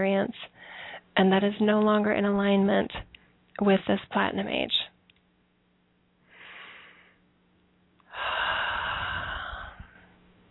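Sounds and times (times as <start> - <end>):
speech: 0.0 - 0.6, 1.2 - 4.8
deep breathing: 6.2 - 7.3, 8.0 - 10.2.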